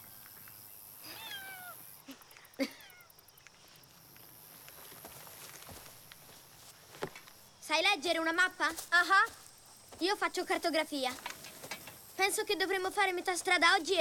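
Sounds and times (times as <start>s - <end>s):
cat meowing: 1.1s - 1.8s
light taps and shuffles: 4.6s - 13.9s
speech: 7.8s - 9.4s, 10.0s - 11.3s, 12.2s - 13.9s.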